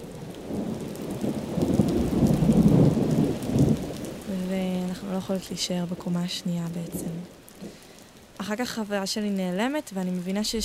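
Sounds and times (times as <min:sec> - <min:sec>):
deep rumble of thunder: 0:00.0 - 0:08.0, 0:10.5 - 0:10.6
heavy rain: 0:00.0 - 0:10.6
speech: 0:05.3 - 0:07.4, 0:08.5 - 0:10.6.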